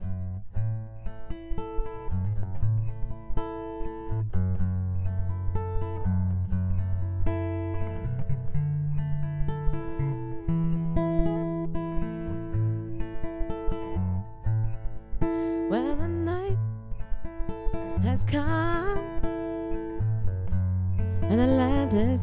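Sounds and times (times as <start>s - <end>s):
guitar: 0.0s - 22.2s
person singing: 15.7s - 16.6s, 18.0s - 19.2s, 21.3s - 22.2s.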